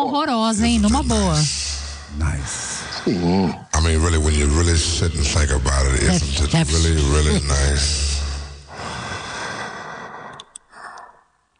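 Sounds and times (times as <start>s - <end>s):
speech: 0.1s - 8.1s
heavy breathing with long airy exhale: 1.1s - 3.6s, 7.9s - 11.5s.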